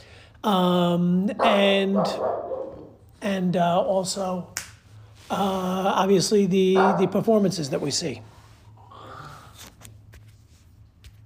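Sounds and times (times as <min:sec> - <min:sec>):
low hum: 0:00.0 - 0:11.2
speech: 0:00.4 - 0:02.6, 0:03.2 - 0:04.6, 0:05.3 - 0:08.3
dog barking with howling barks: 0:01.4 - 0:03.0, 0:06.8 - 0:07.2.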